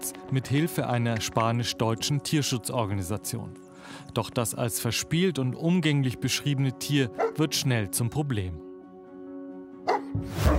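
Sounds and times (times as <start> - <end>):
speech: 0.3 - 8.7, 10.2 - 10.5
dog barking: 7.2 - 7.4, 9.8 - 10.1.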